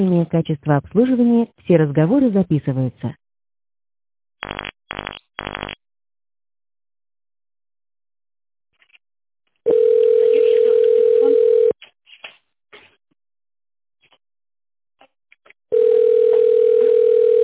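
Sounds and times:
speech: 0:00.0 - 0:03.2
telephone ringing with long steady electronic tones: 0:09.7 - 0:11.8, 0:15.7 - 0:17.4.

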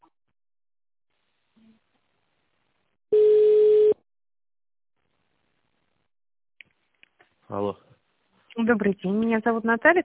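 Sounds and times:
electronic telephone line tones during a call transfer: 0:03.2 - 0:04.0
speech: 0:08.7 - 0:10.0.

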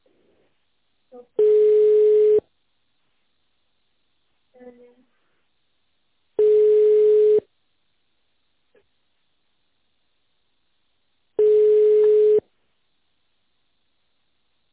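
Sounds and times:
telephone ringback tone while a call is being transferred: 0:01.4 - 0:02.4, 0:06.4 - 0:07.5, 0:11.4 - 0:12.4.

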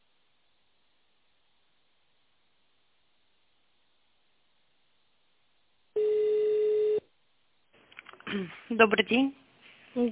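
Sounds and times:
faint telephone line noise: 0:06.0 - 0:07.0
fax machine tone on telephone line: 0:06.0 - 0:07.0
speech: 0:08.4 - 0:09.4.

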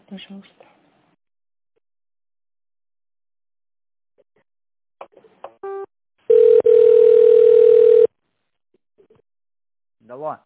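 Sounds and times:
telephone dialing beeps as an office call is transferred: 0:06.3 - 0:08.1.

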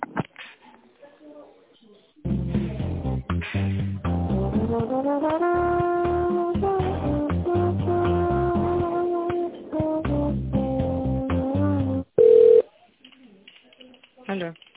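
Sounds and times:
music while an office call is being transferred: 0:02.3 - 0:12.0
single short loud steady telephone beep: 0:12.2 - 0:12.6.

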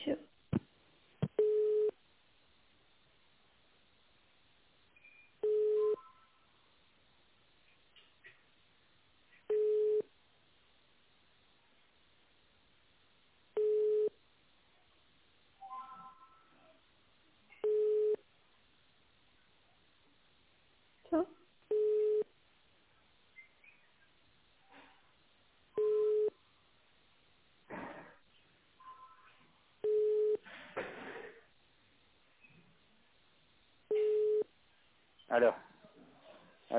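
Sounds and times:
faint sounds: 0:00.0 - 0:36.7
telephone ringback tone over a narrow phone line while a call is transferred: 0:01.4 - 0:01.9, 0:05.4 - 0:06.3, 0:13.6 - 0:14.1, 0:33.9 - 0:34.4
speech: 0:35.3 - 0:35.7.

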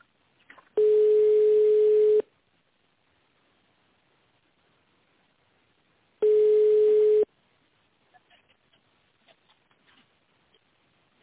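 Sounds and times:
telephone ringback tone while a call is transferred to an internal extension: 0:00.8 - 0:02.3, 0:06.2 - 0:07.3.

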